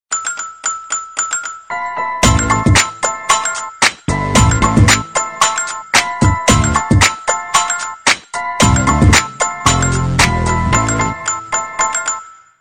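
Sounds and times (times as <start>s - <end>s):
message tone: 1.7s - 7.7s, 8.6s - 11.7s.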